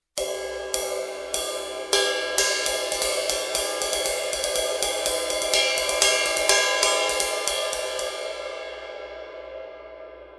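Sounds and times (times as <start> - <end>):
20 inch studio ride cymbal: 0.0 - 10.3.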